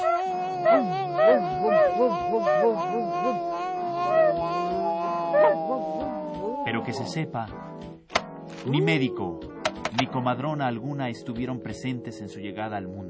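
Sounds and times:
dogs howling and yelping: 0:00.0 - 0:07.3
speech: 0:06.9 - 0:08.0, 0:08.6 - 0:13.0.

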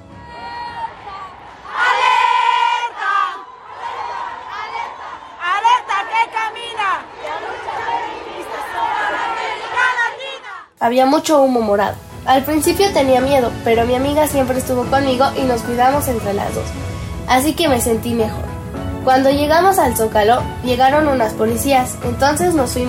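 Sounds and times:
layered yelling and murmuring of a crowd: 0:00.0 - 0:10.7
large protest march crowd shouting and chanting demands: 0:00.0 - 0:10.8
speech: 0:10.8 - 0:18.4, 0:19.0 - 0:22.8.

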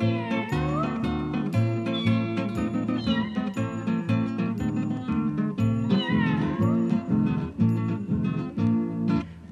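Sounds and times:
kitten meowing: 0:00.0 - 0:04.0, 0:05.8 - 0:07.0
busy instrumental music: 0:00.0 - 0:09.4.

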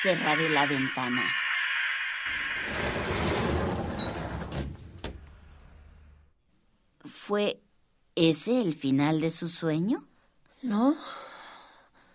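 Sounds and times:
speech: 0:00.0 - 0:01.4, 0:07.3 - 0:07.6, 0:08.2 - 0:11.2
crows cawing and fighting: 0:00.0 - 0:02.9
broad wash of outdoor noise: 0:00.0 - 0:09.7.

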